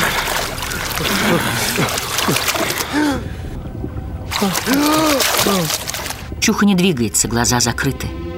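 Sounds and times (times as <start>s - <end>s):
water splashing as young men swim in a lake: 0.0s - 6.4s
speech: 1.3s - 3.3s, 4.4s - 5.8s, 6.4s - 8.2s.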